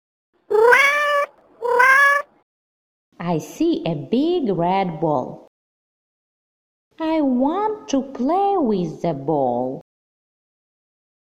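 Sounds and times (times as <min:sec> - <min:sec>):
kitten meowing: 0:00.5 - 0:02.2
speech: 0:03.2 - 0:05.4, 0:07.0 - 0:09.8.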